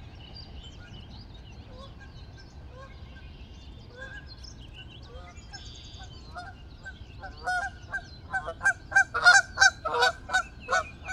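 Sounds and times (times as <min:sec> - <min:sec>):
geese honking in a flyby: 0:08.3 - 0:11.1.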